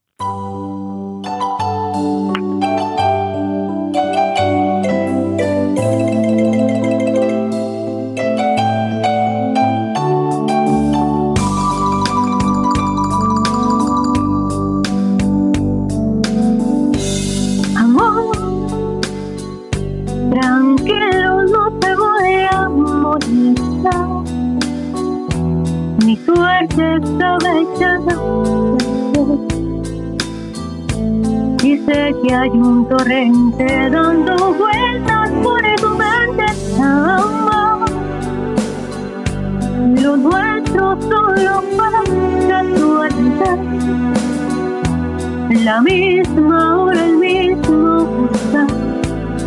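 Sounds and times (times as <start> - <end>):
sustained lush instrumental backing: 0.2 - 49.4
female singer singing a slow Spanish-language ballad: 17.8 - 18.8, 20.2 - 24.4, 26.0 - 29.5, 31.6 - 38.3, 39.7 - 44.0, 45.5 - 49.0.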